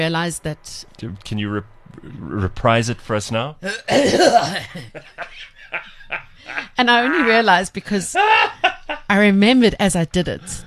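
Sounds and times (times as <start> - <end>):
speech: 0.0 - 10.6
exaggerated old man cough: 3.6 - 4.9
laughter: 3.7 - 7.4, 8.0 - 9.1.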